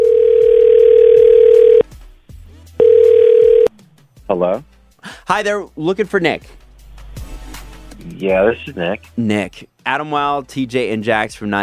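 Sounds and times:
telephone dial tone while a call is placed: 0.0 - 1.8, 2.8 - 3.7
speech: 4.3 - 4.7, 5.3 - 6.6, 8.2 - 11.6.

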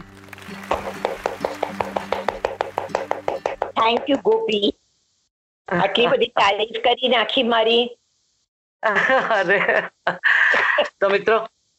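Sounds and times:
audience applause: 0.0 - 3.7
speech: 3.8 - 4.8, 5.7 - 8.0, 8.8 - 11.6.

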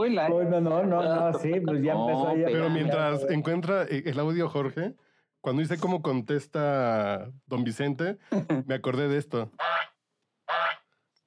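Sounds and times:
speech: 0.0 - 9.8
goose honking: 9.6 - 10.8.

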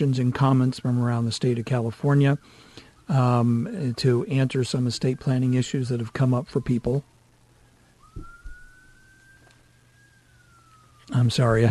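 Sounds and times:
speech: 0.0 - 7.1, 11.1 - 11.6
emergency siren from nearby fire station: 0.0 - 11.6
dull low thumps: 8.1 - 8.6.

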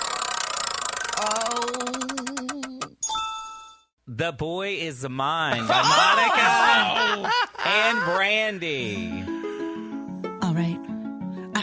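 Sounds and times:
spinning prize wheel clicking: 0.0 - 2.9
speech: 4.2 - 9.3
laughter: 5.5 - 9.0.

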